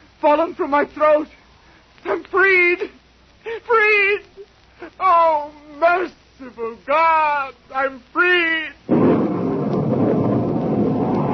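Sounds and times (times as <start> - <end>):
speech: 0.2 - 1.4, 2.0 - 9.1
thunderstorm rumbling roar: 8.9 - 11.3.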